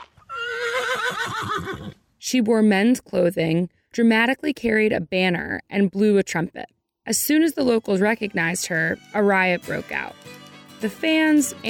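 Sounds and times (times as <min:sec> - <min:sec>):
horse neighing: 0:00.2 - 0:02.0
speech: 0:02.3 - 0:11.6.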